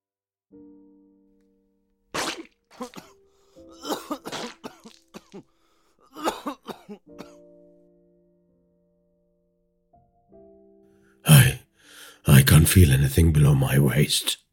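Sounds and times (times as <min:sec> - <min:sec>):
wet ragged coughing: 0:02.2 - 0:07.4
speech: 0:12.6 - 0:14.4.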